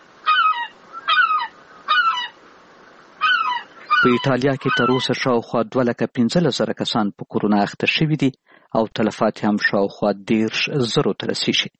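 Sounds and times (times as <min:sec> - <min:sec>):
seagull calling in Rome: 0:00.2 - 0:02.4, 0:03.2 - 0:05.2
speech: 0:04.0 - 0:11.7.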